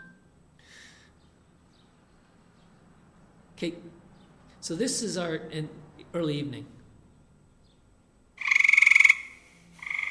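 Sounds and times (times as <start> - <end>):
speech: 3.6 - 4.0, 4.6 - 6.8
tree frogs calling in rapid pulsing trills: 8.4 - 10.1.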